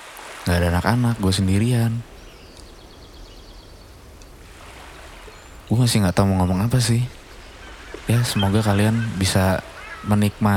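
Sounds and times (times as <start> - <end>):
beach waves: 0.0 - 10.5
speech: 0.5 - 2.1, 5.7 - 7.2, 8.1 - 10.5
faint bird chirps: 2.1 - 4.4, 5.1 - 10.4.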